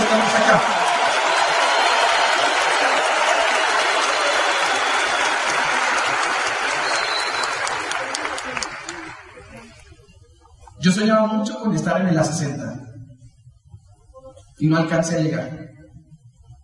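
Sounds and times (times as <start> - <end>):
large audience applause: 0.0 - 9.7
speech: 0.5 - 0.7, 11.1 - 12.7, 14.6 - 15.7.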